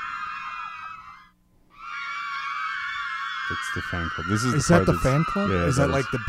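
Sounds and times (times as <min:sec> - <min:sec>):
crowd of kids screaming in high-pitched voices: 0:00.0 - 0:06.2
speech: 0:03.5 - 0:06.2.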